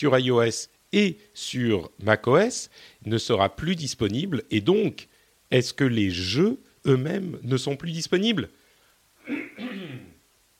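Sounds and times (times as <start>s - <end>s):
speech: 0.0s - 8.6s, 9.3s - 9.8s
cough-like throat clearing: 9.2s - 10.2s.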